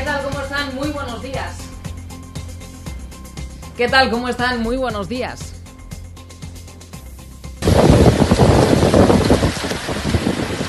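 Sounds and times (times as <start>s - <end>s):
speech: 3.8s - 5.5s
hail during an intense night thunderstorm in Binéfar: 7.6s - 10.6s
heavy rain during an intense night thunderstorm in Binéfar: 7.6s - 10.6s.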